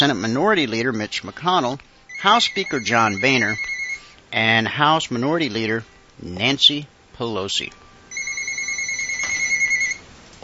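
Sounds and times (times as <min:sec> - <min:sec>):
speech: 0:00.0 - 0:03.7, 0:04.3 - 0:07.8
three phones ringing with bright electronic tones: 0:00.0 - 0:04.6, 0:08.1 - 0:10.0
faint hiss: 0:00.0 - 0:10.4.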